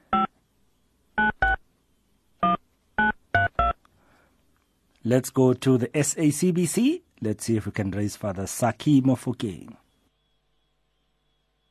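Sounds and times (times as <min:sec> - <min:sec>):
phone keypad dialing beeps: 0:00.1 - 0:00.3, 0:01.2 - 0:01.6, 0:02.4 - 0:03.8
speech: 0:05.1 - 0:09.8.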